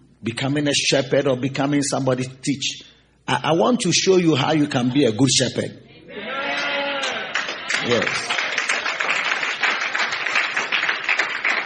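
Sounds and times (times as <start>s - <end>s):
speech: 0.2s - 5.8s, 7.8s - 8.4s
crowd clapping: 6.5s - 11.6s.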